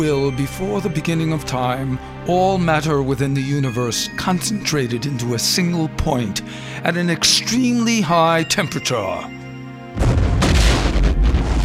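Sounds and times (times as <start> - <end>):
speech: 0.0 - 9.4
explosion boom: 10.0 - 11.6
sustained dense roaring rumble: 10.0 - 11.6.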